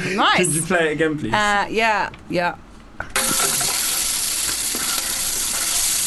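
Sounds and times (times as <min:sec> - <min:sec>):
speech: 0:00.2 - 0:02.6
onions frying in olive oil: 0:03.2 - 0:06.0.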